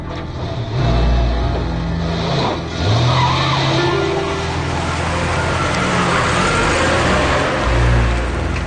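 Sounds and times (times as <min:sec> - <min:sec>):
car engine turning over and revving: 0:00.1 - 0:08.6
car tires squealing: 0:00.4 - 0:08.6.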